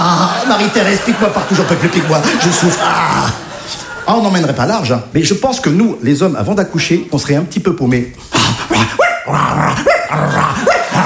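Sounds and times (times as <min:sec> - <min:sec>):
laughter: 0:00.0 - 0:04.6
speech: 0:00.5 - 0:03.5, 0:04.1 - 0:10.7
man imitating a barking dog with yelping barks and growls: 0:08.4 - 0:11.0.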